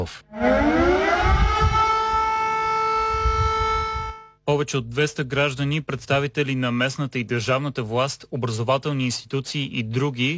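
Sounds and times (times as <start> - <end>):
speech: 0.0 - 0.8, 4.5 - 10.3
low rumbling noise: 0.3 - 4.1
civil defense sirens wailing over central parts of a town: 0.3 - 4.3.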